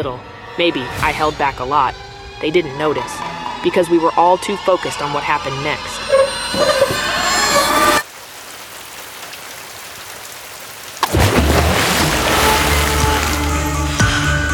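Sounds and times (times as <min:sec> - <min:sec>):
speech: 0:00.0 - 0:07.0
steady rain: 0:08.0 - 0:14.3
bumper car plunging into water below a boardwalk: 0:08.0 - 0:14.4.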